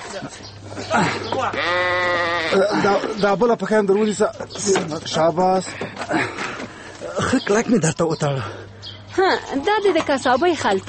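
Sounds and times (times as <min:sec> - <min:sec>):
speech: 0:00.1 - 0:06.4, 0:07.2 - 0:08.6, 0:09.2 - 0:10.8
sheep bleating while its legs are tied with rope before slaughter: 0:01.4 - 0:03.0.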